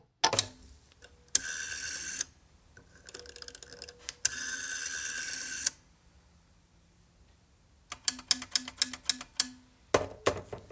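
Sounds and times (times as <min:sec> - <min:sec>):
rotary telephone dial clicking and whirring: 0:00.3 - 0:05.9, 0:07.9 - 0:10.6.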